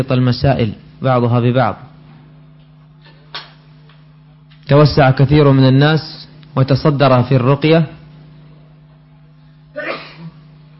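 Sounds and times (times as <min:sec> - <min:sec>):
speech: 0:00.0 - 0:01.9, 0:04.7 - 0:08.0
quiet humming background: 0:00.0 - 0:10.7
person sneezing: 0:09.7 - 0:10.6.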